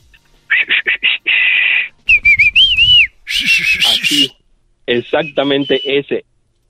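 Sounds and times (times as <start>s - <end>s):
Mexican calling whistle by a father looking for his child in a supermarket: 0.5s - 4.4s, 5.0s - 6.1s
speech: 5.1s - 6.4s.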